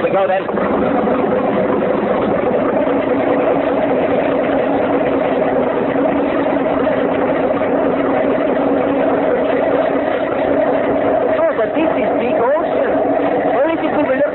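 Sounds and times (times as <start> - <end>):
speech: 0.0 - 4.5
motorboat engine running: 0.0 - 14.3.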